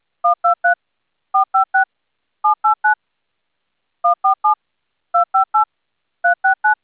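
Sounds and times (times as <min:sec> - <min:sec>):
DTMF touch-tone dialing tones: 0:00.3 - 0:00.8, 0:01.4 - 0:03.0, 0:04.0 - 0:04.6, 0:05.2 - 0:06.8.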